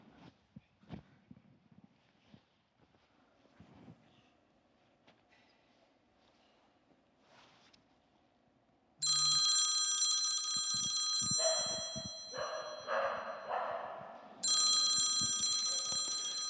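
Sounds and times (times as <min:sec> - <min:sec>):
mobile phone ringing: 0:09.0 - 0:13.5, 0:14.4 - 0:16.4
dog barking: 0:11.4 - 0:11.8, 0:12.4 - 0:14.4.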